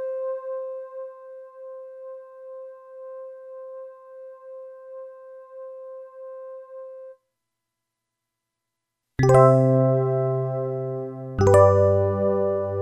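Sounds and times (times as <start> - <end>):
electric piano: 9.2 - 12.7.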